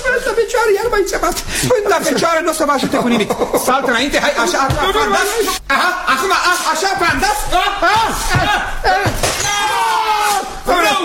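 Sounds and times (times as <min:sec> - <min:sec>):
excited voices talking: 0:00.0 - 0:11.0
speech: 0:00.6 - 0:09.6
laughter: 0:01.6 - 0:09.2
vase shattering during a fencing lesson: 0:06.4 - 0:11.0.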